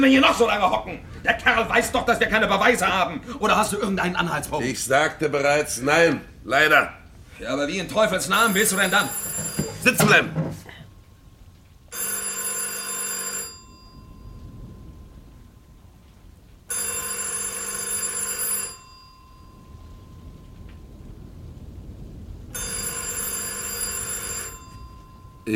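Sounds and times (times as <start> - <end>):
speech: 0.0 - 10.6
telephone ringing with a trilling electronic bell: 8.2 - 10.6, 11.9 - 15.3, 16.7 - 20.2, 22.5 - 25.5.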